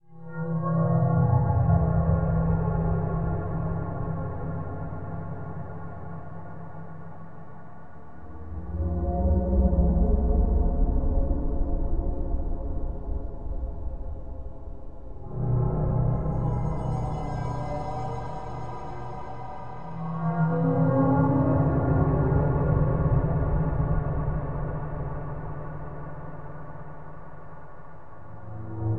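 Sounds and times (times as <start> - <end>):
eerie ambient music: 0.2 - 28.9.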